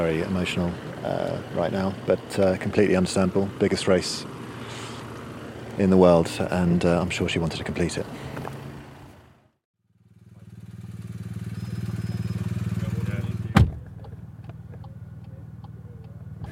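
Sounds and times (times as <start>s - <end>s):
speech: 0.0s - 4.4s, 5.8s - 8.5s
low steady team car engine hum: 0.0s - 16.4s
team car door banging shut as a cyclist gets out: 13.5s - 13.9s.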